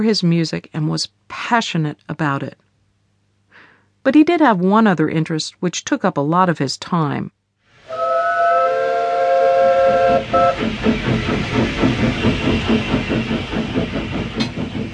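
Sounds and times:
speech: 0:00.0 - 0:02.6, 0:04.0 - 0:07.4, 0:10.3 - 0:14.4
steam train whistle: 0:07.8 - 0:10.7
steam hissing: 0:07.8 - 0:14.9
steam locomotive chuffing: 0:07.9 - 0:14.9.

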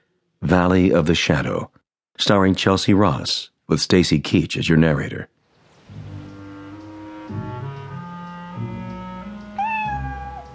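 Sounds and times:
speech: 0:00.4 - 0:05.4
low sustained musical tones: 0:05.7 - 0:10.5
cat meowing: 0:09.5 - 0:10.5.

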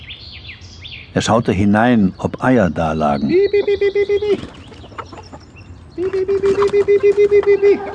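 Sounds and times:
speech: 0:01.2 - 0:04.6, 0:06.0 - 0:07.9
chickens clucking: 0:02.4 - 0:07.9.

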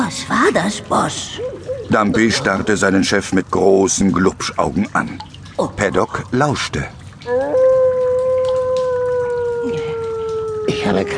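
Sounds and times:
dripping, rushing water in an echoey space: 0:00.0 - 0:11.1
speech: 0:00.1 - 0:07.6, 0:10.9 - 0:11.1
wolf-like howling echoing through sewers: 0:07.3 - 0:11.1.

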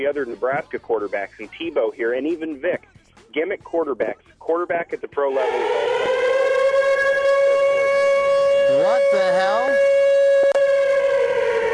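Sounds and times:
speech: 0:00.0 - 0:05.9, 0:08.7 - 0:09.9
loud sustained siren sound effect wailing: 0:05.3 - 0:11.7.

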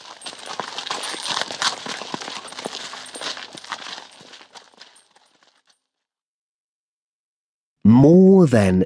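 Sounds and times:
horse hooves clip-clopping on hard ground: 0:00.0 - 0:05.8
speech: 0:08.0 - 0:08.8.

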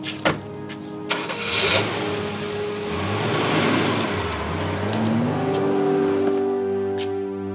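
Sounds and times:
car engine turning over and catching: 0:00.0 - 0:07.5
car engine revving as the car pulls away and accelerates: 0:01.1 - 0:07.0.

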